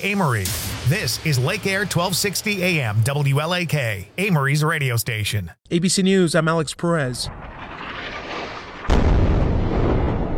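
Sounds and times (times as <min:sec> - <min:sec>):
speech: 0:00.0 - 0:07.5
huge explosion with deep roaring rumble: 0:00.3 - 0:03.0, 0:07.2 - 0:10.3.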